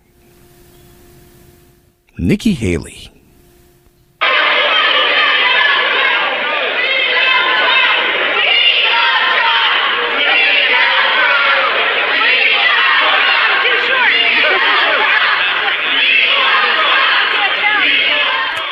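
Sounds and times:
speech: 0:02.2 - 0:03.2
large crowd shouting a political chant: 0:04.2 - 0:18.7.

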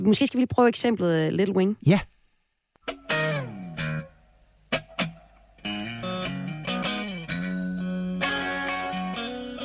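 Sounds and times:
speech: 0:00.0 - 0:02.1
electric guitar with light overdrive playing ringing chords: 0:02.8 - 0:09.6.

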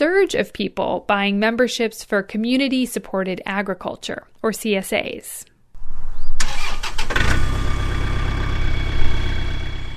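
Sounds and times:
speech: 0:00.0 - 0:05.5
farm tractor engine starting up: 0:06.4 - 0:09.9.

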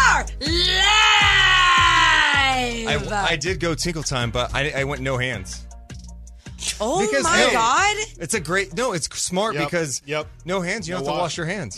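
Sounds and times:
person screaming: 0:00.4 - 0:03.1
speech: 0:03.1 - 0:05.7, 0:06.7 - 0:11.7.

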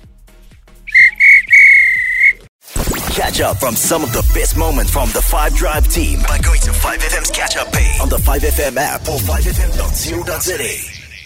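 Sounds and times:
referee's whistle blasts ending a football match: 0:00.9 - 0:02.4
speech: 0:03.2 - 0:11.0.

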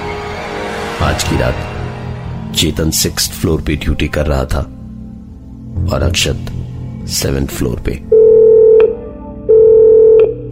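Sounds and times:
speech: 0:01.0 - 0:01.7, 0:02.5 - 0:04.8, 0:05.8 - 0:08.1
telephone ringing in a corridor on the sixth floor: 0:08.1 - 0:10.3.

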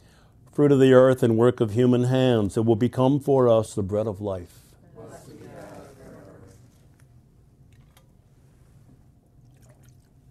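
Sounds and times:
speech: 0:00.6 - 0:04.6
low hushed murmur: 0:04.8 - 0:07.0
drips: 0:09.4 - 0:10.2
water poured into a chalice of wine: 0:09.4 - 0:10.2.

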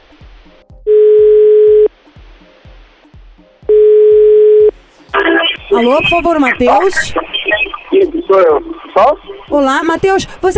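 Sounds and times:
faint rhythmic low thumps: 0:00.0 - 0:10.5
telephone tone while calling someone: 0:00.9 - 0:01.9, 0:03.7 - 0:05.4
speech: 0:05.7 - 0:07.2, 0:08.0 - 0:10.5.

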